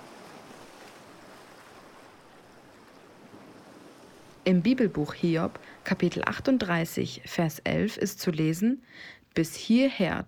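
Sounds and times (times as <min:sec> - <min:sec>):
ocean waves breaking on shore: 0:00.0 - 0:07.3
speech: 0:04.5 - 0:10.2.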